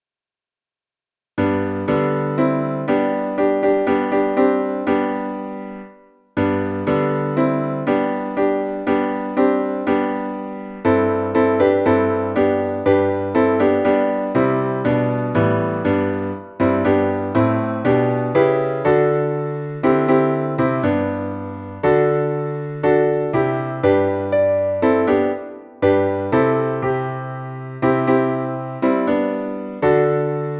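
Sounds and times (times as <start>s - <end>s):
gospel piano: 1.4s - 30.5s.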